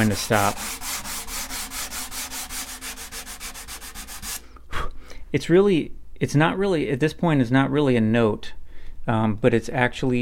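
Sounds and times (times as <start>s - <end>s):
speech: 0.0s - 0.8s, 5.3s - 10.2s
sandpaper sanding wood: 0.0s - 4.4s.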